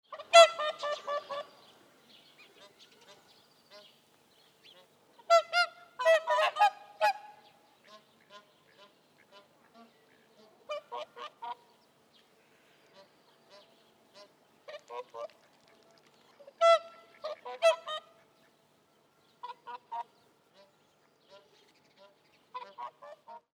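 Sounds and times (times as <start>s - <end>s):
pair of Cygnus cygnus calling: 0.1s - 4.0s, 4.6s - 11.8s, 16.4s - 18.6s, 19.3s - 23.4s.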